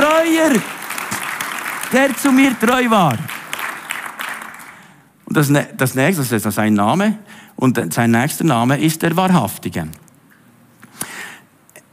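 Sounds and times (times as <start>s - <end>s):
crowd applause: 0.0s - 5.0s
speech: 0.4s - 0.8s, 1.9s - 3.4s, 5.3s - 10.0s.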